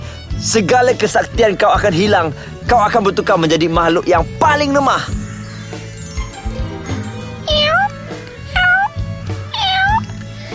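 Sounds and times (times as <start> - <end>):
steady low musical background: 0.0 - 10.5
speech: 0.4 - 5.2
person meowing like a cat: 7.5 - 7.9, 8.5 - 10.0.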